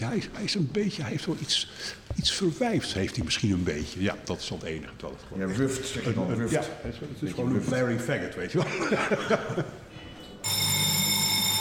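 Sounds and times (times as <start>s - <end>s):
speech: 0.0s - 9.8s
laughter: 8.6s - 9.9s
telephone ringing with a bright electronic tone: 10.4s - 11.5s.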